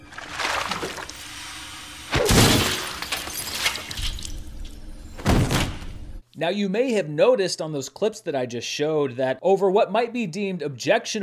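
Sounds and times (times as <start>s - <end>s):
sloshing splashes: 0.0s - 4.4s
frozen head shattering on a hard counter: 0.0s - 5.8s
speech: 6.4s - 11.2s.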